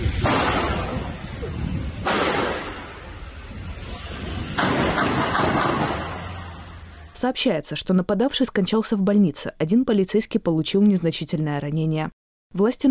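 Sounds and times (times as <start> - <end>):
gunshots in video footage of a knife attack in Norway: 0.0 - 1.2, 2.0 - 3.1, 4.0 - 6.6
speech: 7.2 - 12.8.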